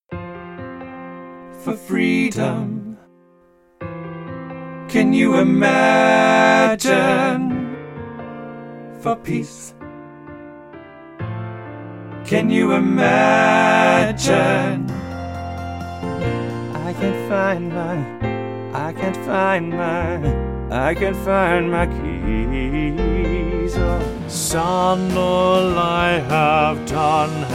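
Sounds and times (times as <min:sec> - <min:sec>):
person singing: 0:01.6 - 0:03.1, 0:04.9 - 0:07.8, 0:12.3 - 0:15.2, 0:16.0 - 0:27.5.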